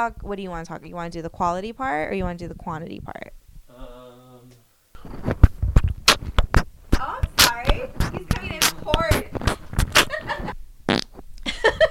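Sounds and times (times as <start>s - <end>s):
speech: 0.0s - 3.9s
buzzy fart with rumbling sputters: 5.0s - 11.2s.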